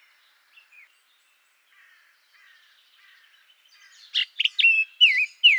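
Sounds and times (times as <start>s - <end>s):
Eurasian blackcap singing in Garching: 4.2s - 5.5s.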